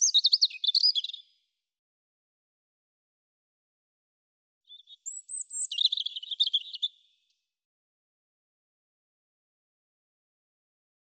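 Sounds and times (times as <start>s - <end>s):
European robin song with high whistle and twittering trill: 0.0s - 1.5s, 4.6s - 7.4s.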